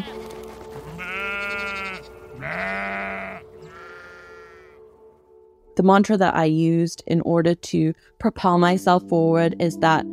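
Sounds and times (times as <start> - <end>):
sheep bleating: 0.8 - 4.8
speech: 5.8 - 10.1.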